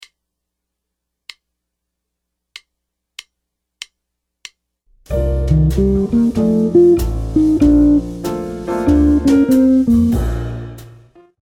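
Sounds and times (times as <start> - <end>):
ii V I jazz guitar licks: 5.1 - 10.4.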